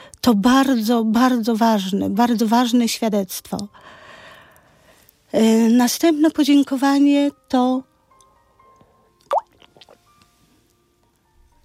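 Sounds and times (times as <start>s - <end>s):
speech: 0.3s - 4.0s, 5.3s - 7.9s
person sipping and gulping water: 9.2s - 10.0s
small liquid sounds: 9.2s - 10.1s.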